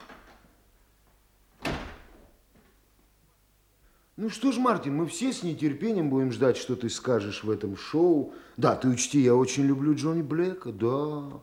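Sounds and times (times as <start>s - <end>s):
door creaking: 0.0s - 0.5s, 1.6s - 2.3s
door thudding shut: 1.6s - 2.2s
speech: 4.2s - 11.4s.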